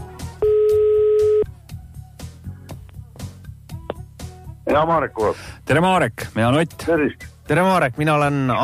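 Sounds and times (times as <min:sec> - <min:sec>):
telephone ringback tone on outgoing call: 0:00.4 - 0:01.5
speech: 0:04.7 - 0:08.6.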